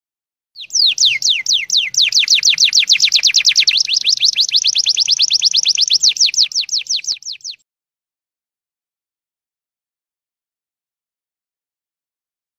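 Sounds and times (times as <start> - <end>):
sunbird song trill: 0.6 - 7.6.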